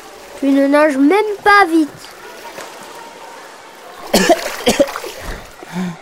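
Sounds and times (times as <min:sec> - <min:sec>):
speech: 0:00.4 - 0:02.1
faint gurgle: 0:02.0 - 0:06.0
harsh wet spluttering coughs from a swimmer who has swallowed water: 0:04.1 - 0:05.2.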